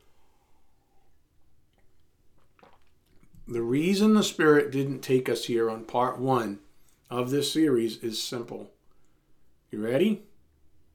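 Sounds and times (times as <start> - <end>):
person sipping water: 1.0 - 3.5
wet swallowing and lip noises: 1.7 - 3.5
speech: 3.5 - 8.8, 9.7 - 10.3.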